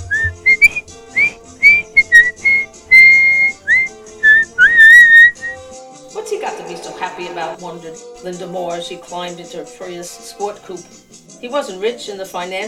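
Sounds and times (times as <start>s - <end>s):
man whistling a lively tune: 0.0s - 5.6s
speech: 7.6s - 12.6s.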